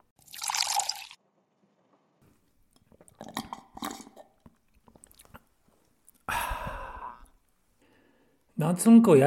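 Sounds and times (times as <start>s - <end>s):
sipping and swallowing mineral water: 2.3s - 7.4s
loud satisfied exhale after drinking water: 6.3s - 7.3s
breathy inhale: 6.3s - 8.5s
speech: 8.6s - 9.2s.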